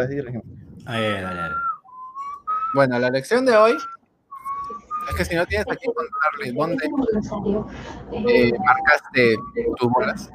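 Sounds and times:
speech: 0.0s - 1.7s, 2.7s - 4.0s, 4.7s - 10.3s
person whistling a simple sing-song children's tune: 1.4s - 2.8s, 3.7s - 5.4s.

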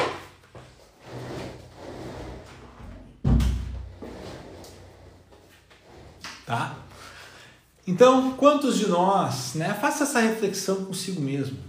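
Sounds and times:
door pushed shut: 3.2s - 3.8s
speech: 6.5s - 6.8s, 7.9s - 11.6s.

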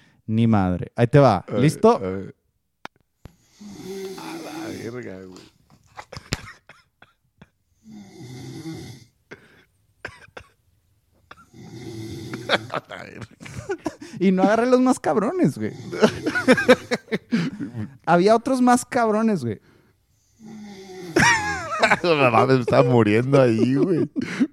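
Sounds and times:
speech: 0.3s - 2.4s, 12.5s - 19.7s, 21.2s - 24.5s
loud rasping human snoring with snorts: 3.3s - 5.6s, 7.8s - 9.2s, 11.4s - 13.0s, 15.5s - 17.1s, 20.2s - 22.6s
laughter: 12.4s - 14.4s, 15.9s - 18.0s, 21.2s - 24.5s.

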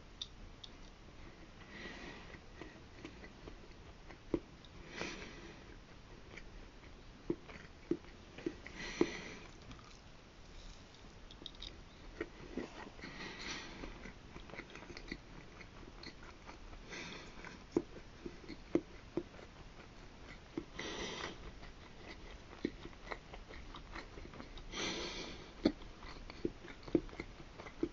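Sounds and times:
faint steady hiss: 0.0s - 27.9s
soft wet chewing of a failed pancake: 7.2s - 24.7s, 25.6s - 27.9s.

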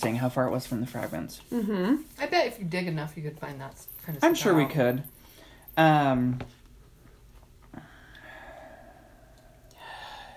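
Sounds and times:
speech: 0.0s - 5.2s, 5.8s - 6.6s
short voiced sigh: 7.7s - 10.3s
long airy deep breath into the microphone: 7.8s - 10.3s.

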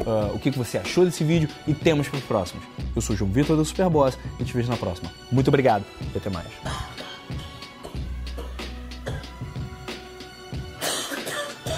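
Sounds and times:
speech: 0.0s - 7.1s
steady musical background: 0.0s - 11.7s
person coughing in loud rough bursts: 6.6s - 9.4s, 10.8s - 11.7s.

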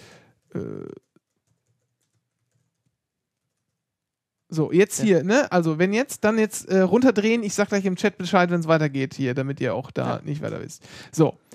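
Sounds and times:
faint typing on a computer keyboard: 0.4s - 3.8s
speech: 4.5s - 11.5s.

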